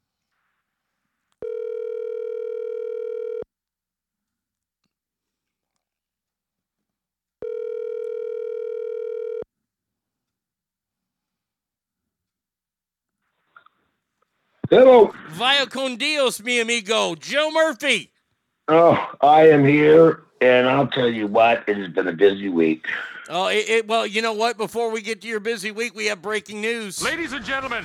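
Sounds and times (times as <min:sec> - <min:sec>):
telephone line tone, steady electronic buzz: 0:01.4 - 0:03.4, 0:07.4 - 0:09.4
speech: 0:14.7 - 0:18.1, 0:18.7 - 0:27.8.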